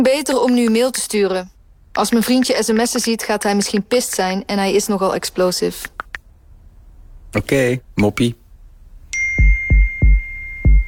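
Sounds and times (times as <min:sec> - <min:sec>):
speech: 0:00.0 - 0:06.0, 0:07.3 - 0:08.4
electronic ding tone: 0:09.2 - 0:10.8
dull low thumps: 0:09.4 - 0:10.8.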